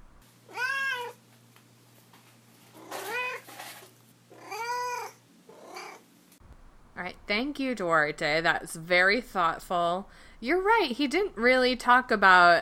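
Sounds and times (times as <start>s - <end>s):
cat meowing: 0.5s - 1.2s, 2.8s - 3.5s, 4.3s - 6.0s
speech: 7.0s - 12.6s.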